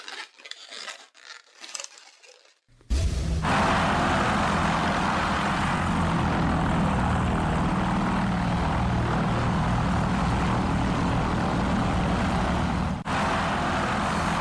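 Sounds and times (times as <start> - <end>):
airship engines and propellers in flight: 2.9 - 14.3.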